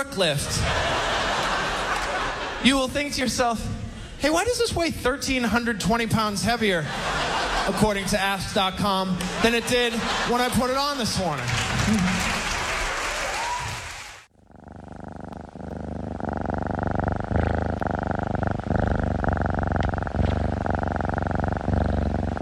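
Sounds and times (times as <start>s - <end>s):
speech: 0.0s - 1.1s, 2.6s - 12.4s
laughter: 0.3s - 3.6s, 6.4s - 14.0s
healthy well-cared-for domestic cat purring: 14.3s - 22.4s.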